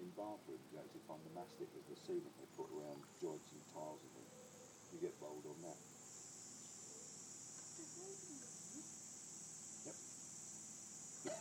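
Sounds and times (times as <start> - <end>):
faint low murmurs: 0.0 - 6.0, 7.6 - 9.0
chorus of crickets chirping: 0.0 - 11.3
speech: 0.2 - 6.0, 7.8 - 9.0.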